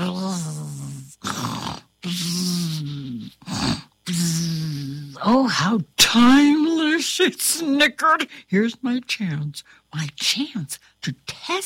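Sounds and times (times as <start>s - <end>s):
voice imitating snoring: 0.0s - 5.2s
speech: 5.2s - 6.6s, 7.2s - 11.6s.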